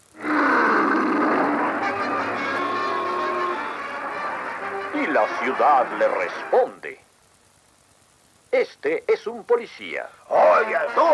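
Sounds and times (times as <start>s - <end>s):
cartoon lion roaring at a city: 0.2s - 3.7s
speech: 5.2s - 7.1s, 8.5s - 11.1s.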